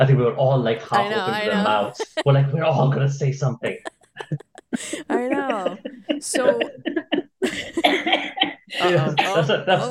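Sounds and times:
speech: 0:00.0 - 0:09.8
laugh-like voiced sounds: 0:00.8 - 0:09.8
person coughing: 0:07.8 - 0:09.6.

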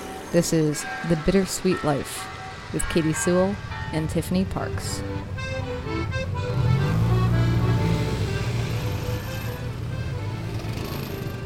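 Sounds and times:
city street traffic: 0:00.0 - 0:11.4
speech: 0:00.3 - 0:05.7
motor engine droning: 0:05.0 - 0:11.4.

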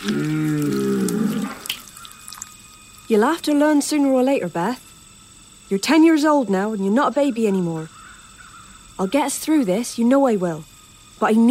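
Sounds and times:
speech: 0:00.0 - 0:00.4, 0:03.1 - 0:04.8, 0:05.7 - 0:08.0, 0:09.0 - 0:11.4
starving cow mooing: 0:00.0 - 0:01.7.

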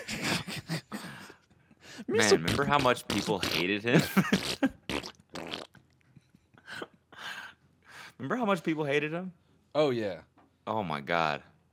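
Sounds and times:
speech: 0:02.1 - 0:04.6, 0:08.2 - 0:11.5
voice making imitated fart noises: 0:02.2 - 0:05.9.

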